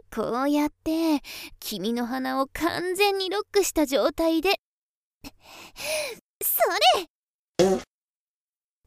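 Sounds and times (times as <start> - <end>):
speech: 0.2 - 4.7, 5.5 - 7.9
fart: 7.6 - 7.9.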